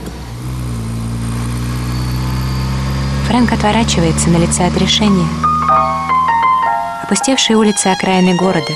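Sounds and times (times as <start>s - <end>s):
powerful Ferrari car engine running steadily at low speed: 0.0s - 6.4s
speech: 3.3s - 6.0s, 7.1s - 8.7s.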